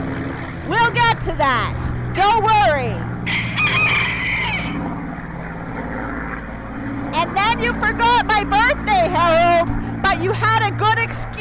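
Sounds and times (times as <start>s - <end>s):
steady low hum: 0.0s - 11.3s
speech: 0.7s - 4.2s, 7.2s - 11.3s
chicken crowing: 3.2s - 4.9s.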